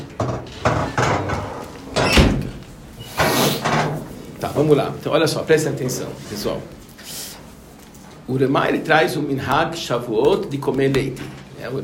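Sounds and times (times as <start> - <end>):
door being handled and pushed shut: 0.2 - 4.0
speech: 4.6 - 6.8, 8.3 - 11.8.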